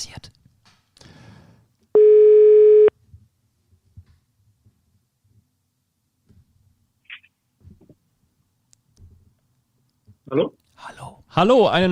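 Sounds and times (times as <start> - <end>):
telephone ringback tone while a call is being placed: 2.0 - 2.9
speech: 10.3 - 10.6, 11.4 - 11.9.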